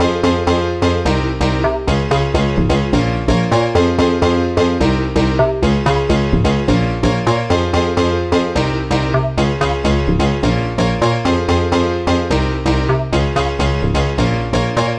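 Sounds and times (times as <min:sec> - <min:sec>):
house piano loop in F minor: 0:00.0 - 0:14.9.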